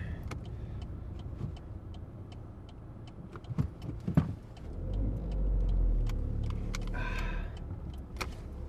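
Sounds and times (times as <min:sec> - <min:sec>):
car engine humming while parking: 0:00.0 - 0:08.6.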